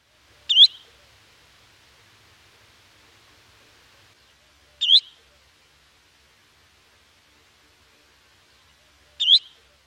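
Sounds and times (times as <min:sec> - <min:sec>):
Tringa erythropus spotted redshank calling: 0:00.3 - 0:01.2, 0:03.6 - 0:05.5, 0:07.8 - 0:09.8.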